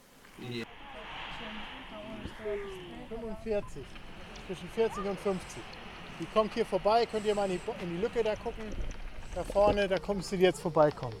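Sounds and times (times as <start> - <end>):
steady hiss of noise: 0.0 - 11.1
speech-like voices talking: 0.3 - 11.1
footsteps walking outdoors while searching for bats: 3.5 - 11.1.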